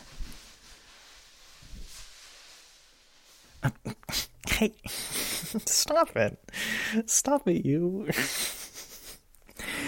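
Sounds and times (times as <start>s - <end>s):
towel rubbing a dog dry after its bath in the tub: 0.0s - 3.6s
speech: 3.6s - 8.5s.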